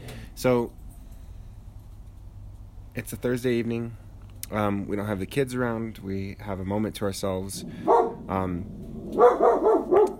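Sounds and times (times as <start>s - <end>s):
speech: 0.4s - 0.8s, 3.0s - 10.0s
dog barking at home in the middle of a city: 7.8s - 8.2s, 9.2s - 10.1s.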